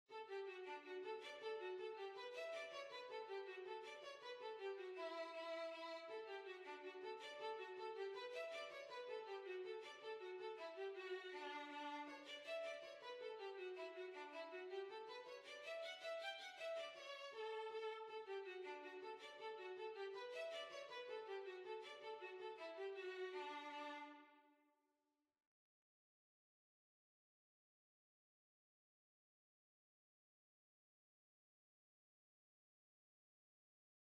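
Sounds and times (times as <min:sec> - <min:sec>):
violin playing a hornpipe: 0:00.2 - 0:24.2.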